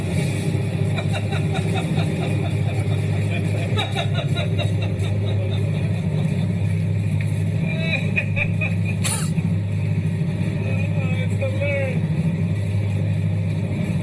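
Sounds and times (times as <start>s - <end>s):
airplane engine drone in flight: 0.0s - 14.0s
laughter: 0.7s - 9.6s.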